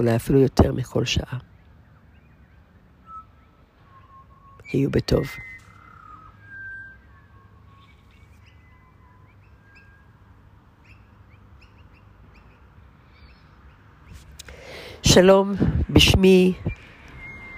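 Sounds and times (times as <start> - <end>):
speech: 0.0 - 1.5, 4.7 - 5.5, 15.1 - 16.8
birds singing and chirping: 0.0 - 17.5
steady outdoor hiss: 0.0 - 17.5.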